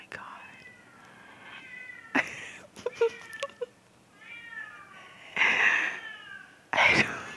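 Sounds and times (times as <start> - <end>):
cat meowing loudly: 1.6 - 2.2, 3.0 - 5.0, 5.8 - 6.6.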